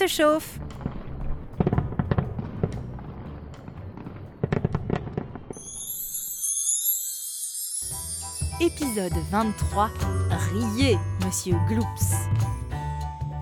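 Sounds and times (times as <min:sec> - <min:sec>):
speech: 0:00.0 - 0:00.7, 0:08.8 - 0:12.6
fireworks rockets being set off with bangs, pops and crackles: 0:00.2 - 0:07.5
sustained shrill high whistling of fireworks: 0:05.6 - 0:08.6.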